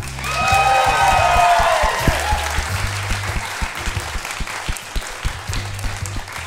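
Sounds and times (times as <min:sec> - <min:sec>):
audience applause: 0:00.0 - 0:06.4
audience whoops and whistles: 0:00.2 - 0:03.8.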